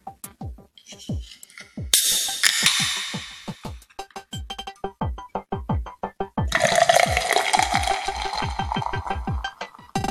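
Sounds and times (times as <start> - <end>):
glass clinks and taps: 0.8 - 3.7
beer fizzing and gurgling as it is poured into a glass: 6.5 - 9.9.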